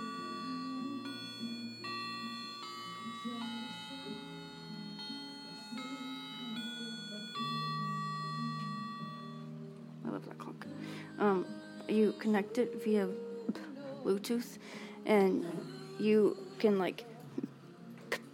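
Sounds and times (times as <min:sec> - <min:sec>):
wall clock playing a slow chiming melody: 0:00.0 - 0:09.5
speech: 0:10.2 - 0:17.1.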